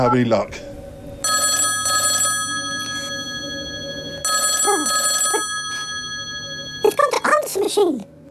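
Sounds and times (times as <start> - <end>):
telephone ringing after a number is dialed: 1.2 - 7.4.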